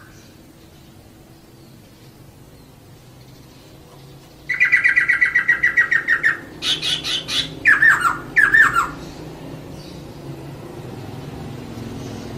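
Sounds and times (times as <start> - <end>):
laughingthrush long rolling whistled song: 4.5 - 9.0.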